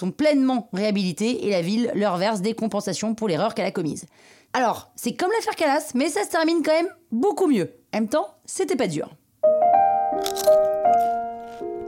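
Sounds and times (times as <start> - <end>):
speech: 0.0 - 10.8
crisp food being bitten: 10.2 - 11.7.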